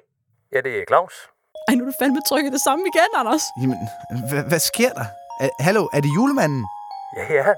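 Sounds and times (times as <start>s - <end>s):
speech: 0.6s - 7.5s
touch-tone keypad beeps: 1.6s - 7.5s.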